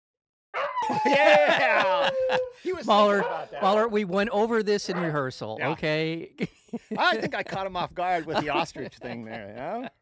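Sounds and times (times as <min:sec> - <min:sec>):
person imitating small dog's excited yipping: 0:00.6 - 0:03.8
laughter: 0:00.8 - 0:03.7, 0:06.3 - 0:10.0
speech: 0:00.9 - 0:10.0.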